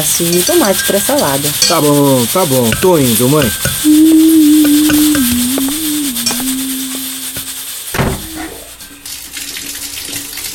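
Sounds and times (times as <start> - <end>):
speech: 0.0 - 4.3
hot water rushing from a shower: 0.0 - 10.5
low droning hum: 3.6 - 8.8
knocks and clunks: 7.9 - 8.4.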